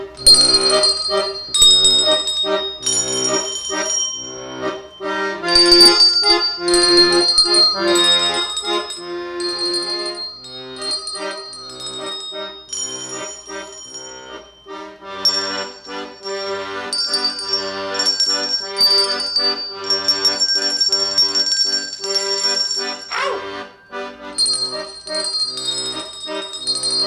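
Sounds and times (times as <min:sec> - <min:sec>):
handbell choir ringing a melody: 0:00.2 - 0:27.0.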